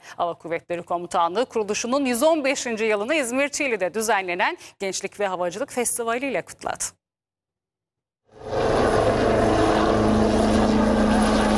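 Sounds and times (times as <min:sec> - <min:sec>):
speech: 0:00.2 - 0:07.0
Gökbey helicopter rotor and engine at an air force aviation festival at İzmir Çiğli: 0:08.4 - 0:11.5.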